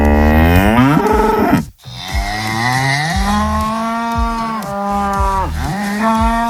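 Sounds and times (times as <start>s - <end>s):
cows mooing on a livestock farm in Indre-et-Loire France: 0.0s - 6.4s.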